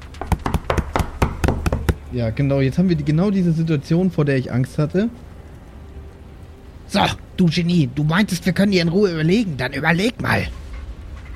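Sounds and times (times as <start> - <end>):
rapid uneven hammering on doors: 0.0 - 2.1
speech: 2.1 - 5.3, 6.9 - 10.6.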